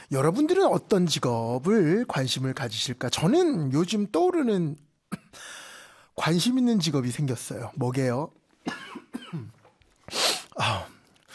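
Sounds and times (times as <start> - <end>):
speech: 0.1 - 5.5, 6.2 - 9.5
person coughing: 5.1 - 5.4, 8.7 - 9.7.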